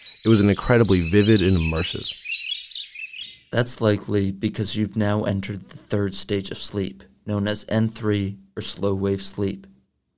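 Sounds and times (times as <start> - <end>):
birds chirping and twittering in the countryside: 0.0 - 4.3
speech: 0.2 - 2.2, 3.5 - 9.7.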